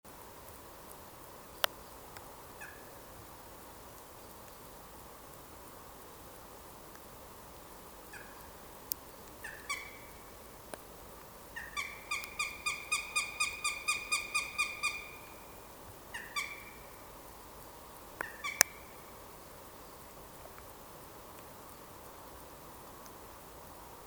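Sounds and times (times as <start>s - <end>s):
Northern Goshawk Accipiter gentilis gentilis: 2.6s - 3.0s, 8.1s - 8.5s, 9.4s - 10.4s, 11.5s - 17.1s, 18.2s - 19.1s.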